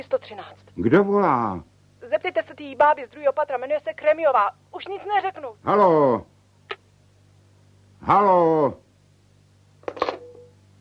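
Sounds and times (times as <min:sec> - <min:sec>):
speech: 0:00.0 - 0:06.3, 0:08.0 - 0:08.8
low steady hum: 0:00.0 - 0:10.7
telephone handset hung up with clunk and rattle: 0:09.8 - 0:10.5.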